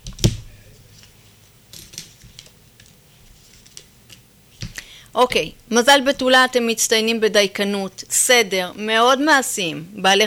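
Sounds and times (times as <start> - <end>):
tarot cards shuffling rustles: 0.7 - 4.7
speech: 5.2 - 10.2.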